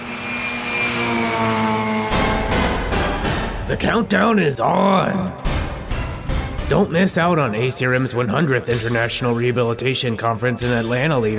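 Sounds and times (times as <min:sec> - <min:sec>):
monster truck engine revving: 0:00.0 - 0:04.2
speech: 0:03.7 - 0:05.5, 0:06.7 - 0:11.3.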